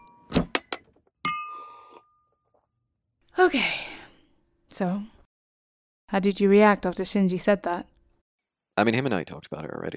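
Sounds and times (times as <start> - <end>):
glasses clinking together in a toast: 0.0 - 2.3
speech: 3.4 - 3.8, 4.8 - 5.2, 6.1 - 7.9, 8.8 - 9.9.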